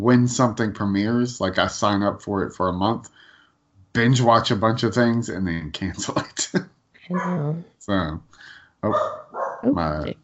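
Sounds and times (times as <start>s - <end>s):
laughter: 0.0s - 3.0s, 4.0s - 6.6s
speech: 0.0s - 3.3s, 3.9s - 10.2s
dogs barking: 8.8s - 9.7s.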